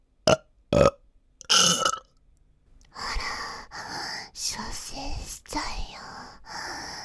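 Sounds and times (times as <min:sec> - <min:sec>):
loud rasping burps: 0:00.3 - 0:02.1
person whispering breathily: 0:02.9 - 0:07.0.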